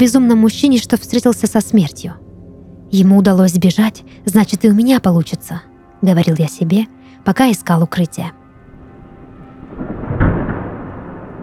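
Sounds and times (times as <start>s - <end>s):
speech: 0.0s - 2.3s, 2.9s - 8.4s
steady thunder rumble and heavy low-end growl: 8.7s - 11.4s
thunderclap shaking a house: 9.6s - 11.4s.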